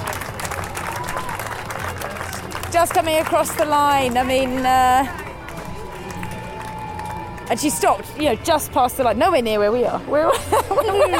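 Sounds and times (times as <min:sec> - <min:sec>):
large crowd cheering and applauding at a race finish: 0:00.0 - 0:08.2
speech: 0:02.7 - 0:05.2, 0:07.5 - 0:11.1
laughter: 0:10.2 - 0:11.1.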